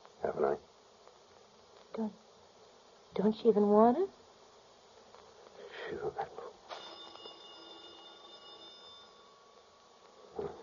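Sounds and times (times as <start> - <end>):
speech: 2.0 - 2.2, 3.2 - 4.2
telephone bell ringing: 6.7 - 9.9.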